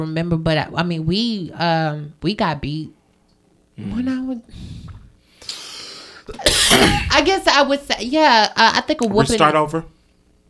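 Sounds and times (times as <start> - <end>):
speech: 0.0 - 3.0, 3.8 - 4.9, 6.3 - 10.0
single short cough: 6.3 - 7.3.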